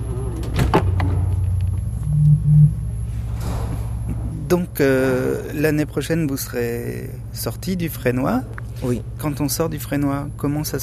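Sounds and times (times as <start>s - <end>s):
faint hum: 0.0s - 10.8s
steady low rumble: 0.0s - 10.8s
door swinging shut: 0.3s - 1.4s
speech: 4.5s - 10.8s.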